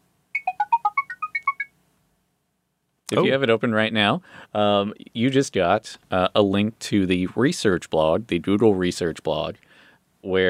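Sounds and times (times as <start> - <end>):
short electronic beeps played by computer: 0.4 - 1.7
speech: 3.1 - 10.4.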